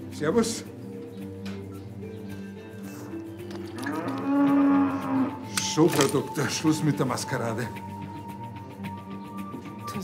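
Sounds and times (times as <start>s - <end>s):
speech: 0.2s - 0.8s, 5.8s - 7.9s
cattle mooing during a difficult calving: 3.7s - 5.5s.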